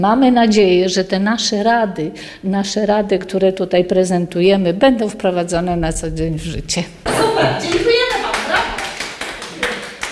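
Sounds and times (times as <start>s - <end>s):
speech: 0.0s - 8.0s
hands clapping in applause: 7.5s - 10.1s.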